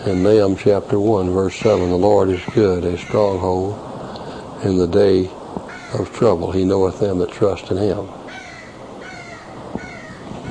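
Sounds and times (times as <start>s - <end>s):
crows cawing outside: 0.0s - 0.6s, 1.6s - 3.6s, 5.6s - 6.2s, 8.2s - 10.4s
speech: 0.0s - 3.9s, 4.6s - 8.2s
steady hiss: 0.0s - 10.4s.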